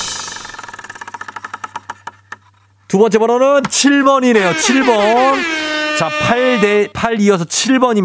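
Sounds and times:
lottery number machine spinning in a radio prize draw: 0.2s - 2.4s
speech: 2.9s - 8.0s.

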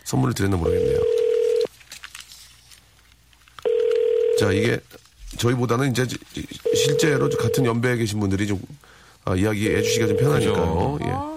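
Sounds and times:
speech: 0.1s - 1.2s, 4.4s - 11.3s
phone line ringback tones on an unanswered call: 0.7s - 1.7s, 3.7s - 4.5s, 6.6s - 7.8s, 9.7s - 10.8s.

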